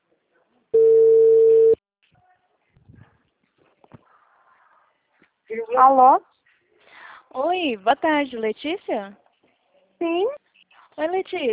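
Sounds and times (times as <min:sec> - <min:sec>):
telephone ringback tone while a call connects: 0:00.8 - 0:01.8
speech: 0:05.5 - 0:06.3, 0:07.4 - 0:09.2, 0:10.0 - 0:10.4, 0:11.0 - 0:11.5.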